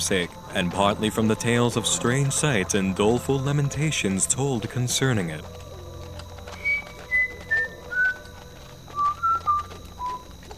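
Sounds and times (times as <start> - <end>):
speech: 0.0 - 5.6
faint steady hum: 0.0 - 10.5
person whistling a short tune: 6.5 - 10.4.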